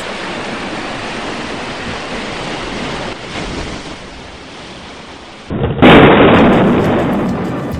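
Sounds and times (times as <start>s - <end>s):
heavy surf crashing in a raging storm: 0.0s - 7.7s
loud thunder crack rumbling: 5.5s - 7.7s.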